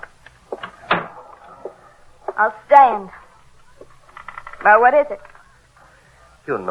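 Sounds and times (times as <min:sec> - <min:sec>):
door pushed shut: 0:00.0 - 0:02.4
faint knocks and shuffles: 0:00.0 - 0:06.3
speech: 0:02.4 - 0:03.2, 0:04.6 - 0:05.3, 0:06.4 - 0:06.7.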